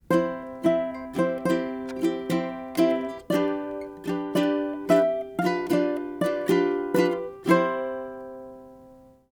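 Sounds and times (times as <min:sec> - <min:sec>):
ukulele accompaniment: 0:00.0 - 0:09.3.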